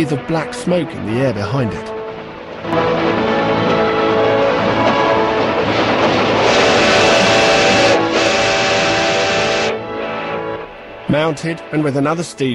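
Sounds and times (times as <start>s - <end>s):
speech: 0.0s - 2.0s, 11.1s - 12.5s
steam train thundering past across farmland: 2.0s - 12.2s
steam train hissing whistle-like tone: 6.4s - 11.0s.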